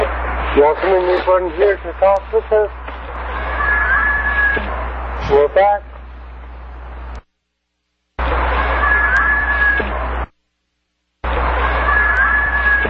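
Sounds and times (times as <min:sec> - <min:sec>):
speech: 0:00.6 - 0:02.8, 0:05.3 - 0:05.9
children screaming while playing: 0:03.1 - 0:04.6, 0:08.4 - 0:09.8, 0:11.3 - 0:12.8
thin high wail: 0:03.1 - 0:04.7, 0:08.2 - 0:09.8, 0:11.2 - 0:12.8.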